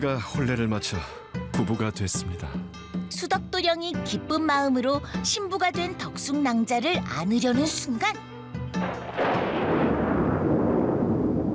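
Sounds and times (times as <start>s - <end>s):
speech: 0.0s - 9.5s
loud thunder in a storm: 8.8s - 11.5s.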